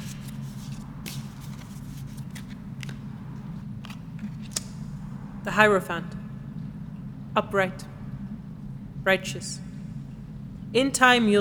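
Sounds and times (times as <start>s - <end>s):
tarot cards being shuffled and drawn: 0.0s - 4.7s
steady low hum: 0.0s - 11.3s
speech: 5.5s - 6.2s, 7.4s - 7.9s, 9.0s - 9.7s, 10.7s - 11.3s.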